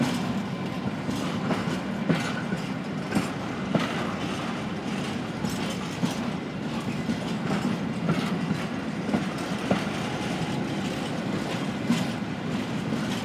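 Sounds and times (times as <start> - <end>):
train moving slowly: 0.0 - 13.2.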